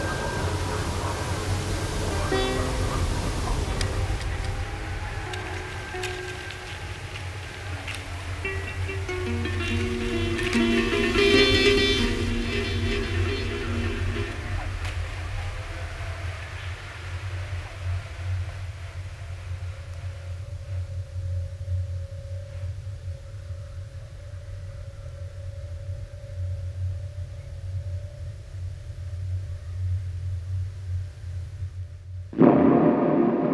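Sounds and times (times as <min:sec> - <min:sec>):
wind-played aeolian lute tones on a mountain: 0:00.0 - 0:15.6
constant low wind rumble on a mountain: 0:00.0 - 0:33.5.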